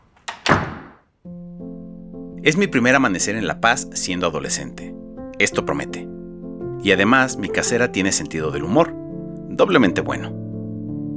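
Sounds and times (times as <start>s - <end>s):
door shutting with a solid double thud: 0.0s - 1.0s
speech: 2.4s - 6.2s, 6.8s - 9.0s, 9.6s - 10.4s.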